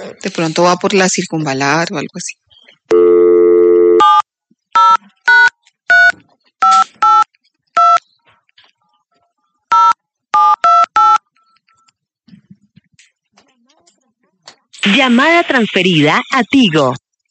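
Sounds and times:
speech: 0:00.1 - 0:03.2, 0:15.0 - 0:17.0
steady phone dial tone: 0:02.9 - 0:04.2
crisp touch-tone keypad beeps: 0:04.8 - 0:08.0, 0:09.7 - 0:11.9.

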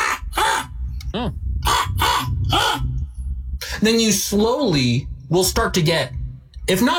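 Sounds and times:
person's voice imitating a crow's harsh caw to draw birds' attention: 0:00.0 - 0:03.0
speech: 0:01.2 - 0:01.5, 0:03.8 - 0:06.9.

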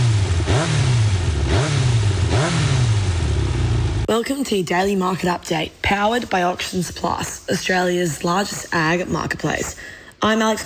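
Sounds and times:
Yamaha motorcycle engine revving: 0:00.0 - 0:04.1
speech: 0:04.2 - 0:10.6.

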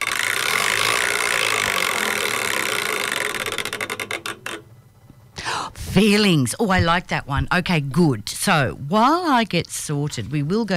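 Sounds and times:
prize wheel being spun: 0:00.0 - 0:05.3
speech: 0:06.0 - 0:10.7.

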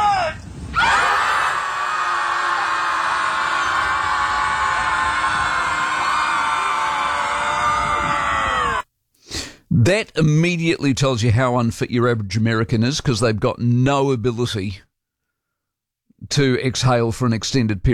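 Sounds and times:
crowd of people screaming in one loud sustained group yell: 0:00.7 - 0:08.8
speech: 0:09.8 - 0:14.9, 0:16.3 - 0:17.9.

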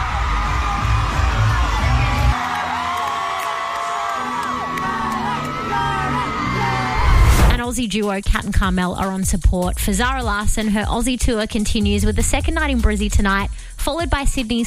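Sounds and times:
large concert crowd cheering and whooping: 0:00.0 - 0:07.5
speech: 0:07.7 - 0:14.6.

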